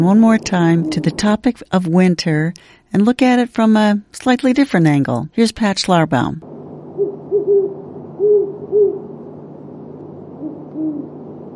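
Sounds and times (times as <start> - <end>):
speech: 0.0 - 6.5
low hum: 0.0 - 11.5
great horned owls hooting mating calls: 0.6 - 1.2, 7.0 - 9.3, 10.2 - 11.3.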